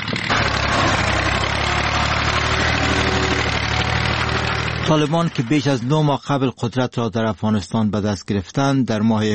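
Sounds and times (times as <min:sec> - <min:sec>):
tractor engine running in poppy field: 0:00.0 - 0:06.4
speech: 0:04.9 - 0:09.3.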